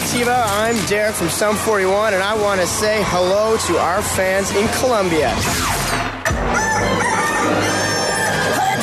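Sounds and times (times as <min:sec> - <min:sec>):
speech: 0:00.1 - 0:05.8, 0:06.4 - 0:07.6
rooster crowing: 0:06.6 - 0:08.7.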